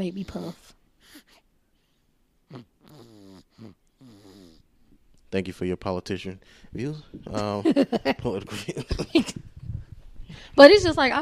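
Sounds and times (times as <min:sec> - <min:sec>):
speech: 0:00.0 - 0:01.4, 0:02.5 - 0:04.2, 0:05.3 - 0:09.5, 0:10.3 - 0:11.2
pet snoring: 0:02.5 - 0:04.6
laughter: 0:07.3 - 0:09.4.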